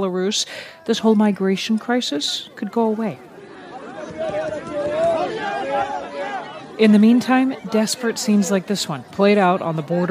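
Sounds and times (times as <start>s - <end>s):
speech: 0.0s - 3.3s, 4.2s - 6.0s, 6.8s - 10.0s
crowd of migrants shouting around a food distribution truck: 2.2s - 10.0s.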